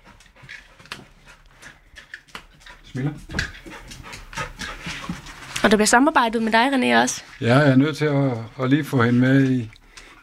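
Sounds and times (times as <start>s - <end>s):
labrador detection dog sniffing while searching for hidden heroin: 0.0s - 5.6s
speech: 3.0s - 3.5s, 5.6s - 10.2s.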